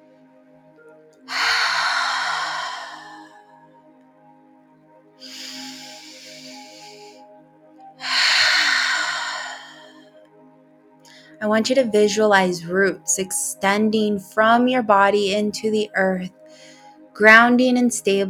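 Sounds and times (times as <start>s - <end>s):
faint steady drone: 1.2s - 4.4s, 5.2s - 10.3s
deep breathing in through the nose and out through the mouth: 1.3s - 3.4s, 5.2s - 7.2s, 8.0s - 10.1s
speech: 11.4s - 18.2s.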